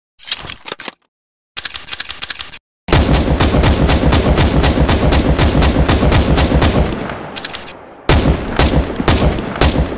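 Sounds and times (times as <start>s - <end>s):
video game sniper rifle gunshot: 2.9s - 9.9s.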